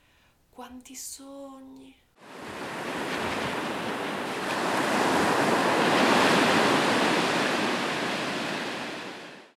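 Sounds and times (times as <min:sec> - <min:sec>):
speech: 0:00.6 - 0:03.4
sea waves breaking on the shore: 0:02.2 - 0:09.5
steady windy hiss: 0:02.2 - 0:09.5.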